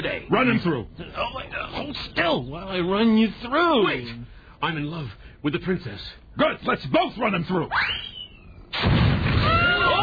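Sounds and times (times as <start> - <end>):
speech: 0.1 - 8.1
bomb explosion: 8.7 - 9.9.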